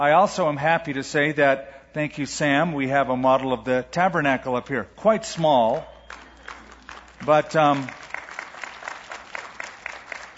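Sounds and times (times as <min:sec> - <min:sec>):
speech: 0:00.0 - 0:05.9, 0:07.2 - 0:08.0
small audience clapping: 0:05.3 - 0:10.3.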